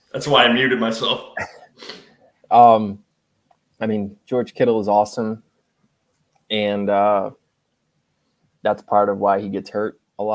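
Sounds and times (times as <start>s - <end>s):
speech: 0.1s - 3.0s, 3.8s - 5.5s, 6.5s - 7.4s, 8.6s - 10.3s
person clearing throat: 1.3s - 2.0s
person coughing: 1.4s - 2.0s.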